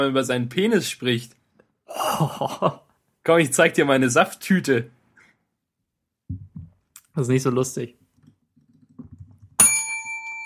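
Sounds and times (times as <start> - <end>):
speech: 0.0 - 1.4, 2.0 - 5.0, 7.2 - 8.0
laughter: 2.0 - 2.8
bright bell ding: 9.6 - 10.4.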